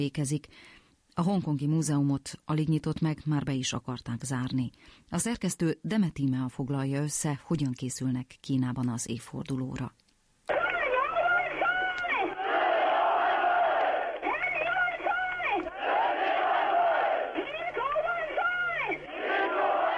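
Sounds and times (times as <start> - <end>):
speech: 0.0 - 10.0
protest crowd demanding democracy chanting and shouting: 10.5 - 19.9.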